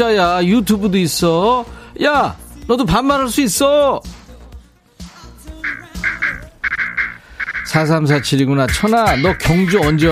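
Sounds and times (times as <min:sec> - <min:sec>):
speech: 0:00.0 - 0:04.2, 0:07.7 - 0:10.1
mallard ducks quacking on the Hyeongsan River: 0:05.6 - 0:10.1.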